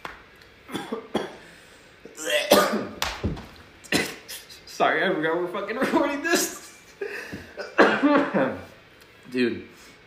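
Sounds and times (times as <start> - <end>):
person coughing: 0.7 - 1.4, 2.1 - 3.0, 3.9 - 4.6, 7.0 - 8.6
speech: 4.8 - 6.6, 9.3 - 9.7.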